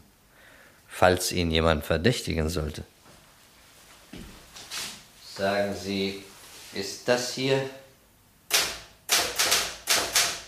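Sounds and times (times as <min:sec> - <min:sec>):
speech: 0:01.0 - 0:03.0, 0:05.4 - 0:07.8
Remington typewriter key strikes typing a type sample: 0:08.5 - 0:10.4.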